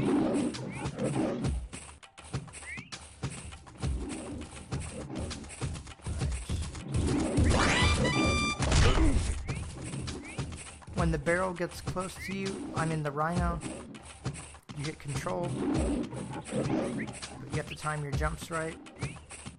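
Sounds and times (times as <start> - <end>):
video game tiger roaring: 0.0 - 1.6, 3.8 - 7.4, 13.6 - 14.0, 15.2 - 17.6
video game sound effects with crashing noises: 7.3 - 9.5
speech: 11.1 - 13.8, 14.8 - 19.0.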